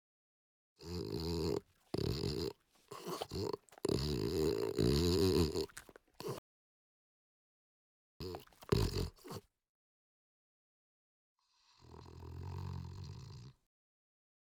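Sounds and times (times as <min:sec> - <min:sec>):
French Bulldog snorting in raspy, throaty bursts: 0:00.8 - 0:06.4, 0:08.2 - 0:09.5.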